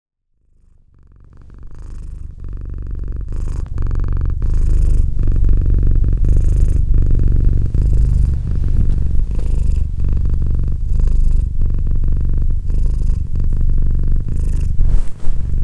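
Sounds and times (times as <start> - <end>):
domestic cat purring: 0.4 - 15.6.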